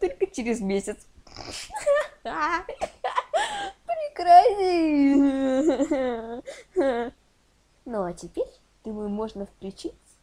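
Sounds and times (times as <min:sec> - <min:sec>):
speech: 0:00.0 - 0:02.9, 0:04.2 - 0:07.2, 0:07.9 - 0:10.0
young child crying and whimpering: 0:03.2 - 0:07.2.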